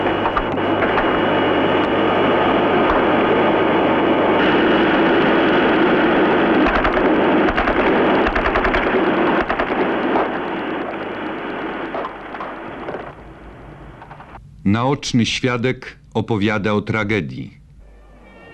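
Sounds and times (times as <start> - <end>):
dense roaring background: 0.0 - 16.4
rapid bursts of gunfire: 6.6 - 13.1
speech: 14.8 - 17.6.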